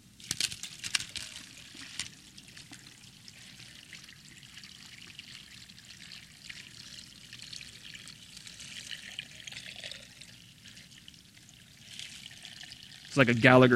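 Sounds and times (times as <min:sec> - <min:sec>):
water pouring into a jar filled with little rocks: 0:00.2 - 0:13.6
speech: 0:13.2 - 0:13.7.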